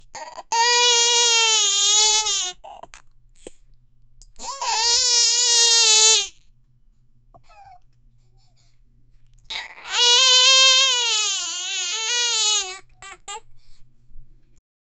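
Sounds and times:
baby mouse crying: 0:00.2 - 0:02.9, 0:04.4 - 0:06.4, 0:07.4 - 0:07.8, 0:09.5 - 0:13.5.

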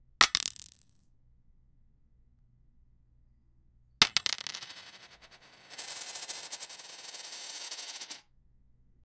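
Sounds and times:
shiny metal coins dropping: 0:00.2 - 0:01.0, 0:04.0 - 0:08.2.

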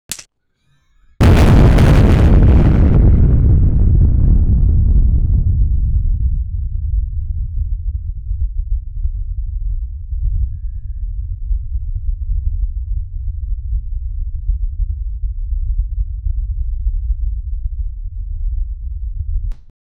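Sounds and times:
missile: 0:01.2 - 0:06.6
eruption: 0:01.2 - 0:19.4.

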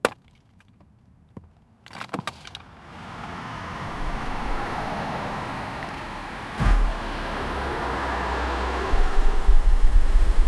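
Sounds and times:
car driving: 0:02.7 - 0:10.4.

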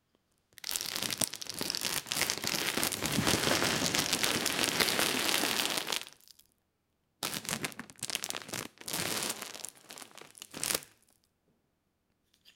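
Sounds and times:
bag opening: 0:00.9 - 0:06.1, 0:07.3 - 0:11.0.

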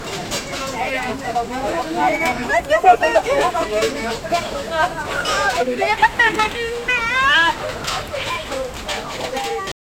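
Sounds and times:
light market ambience: 0:00.0 - 0:09.8
children laughing: 0:01.6 - 0:08.8.

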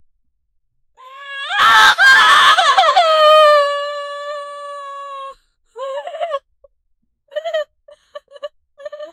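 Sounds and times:
women crying: 0:01.6 - 0:06.5, 0:07.3 - 0:09.1.

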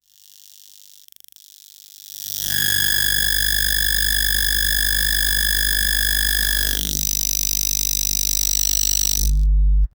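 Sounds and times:
electrical short circuit: 0:02.4 - 0:09.9.

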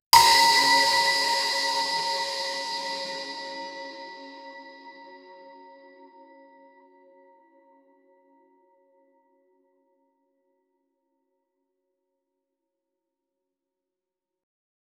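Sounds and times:
conch shell blast: 0:00.2 - 0:05.1.

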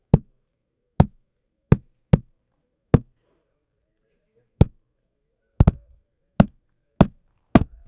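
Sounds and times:
leather ball hitting leg in sport: 0:01.0 - 0:02.3, 0:05.6 - 0:07.8.

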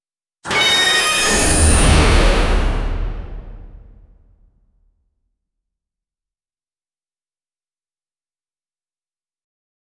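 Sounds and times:
futuristic sci-fi door: 0:00.5 - 0:04.1.

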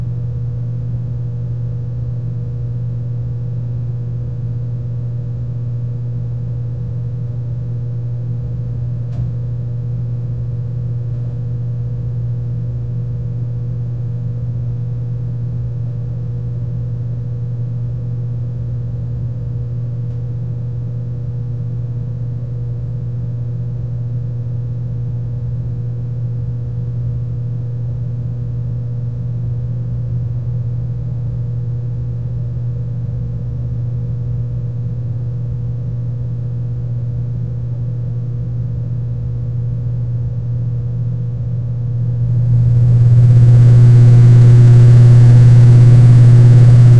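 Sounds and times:
loud household vacuum cleaner cleaning: 0:42.2 - 0:46.9.

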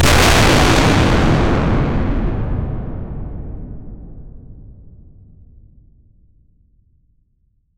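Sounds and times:
big loud explosion: 0:00.0 - 0:05.7.

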